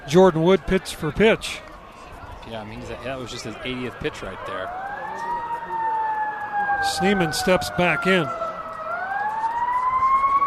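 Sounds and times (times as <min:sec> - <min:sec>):
faint traffic rumble: 0:00.0 - 0:10.4
fire engine sirens wailing past a ballpark during a baseball game: 0:00.0 - 0:10.4
speech: 0:00.1 - 0:01.7, 0:02.5 - 0:05.3, 0:06.8 - 0:08.5.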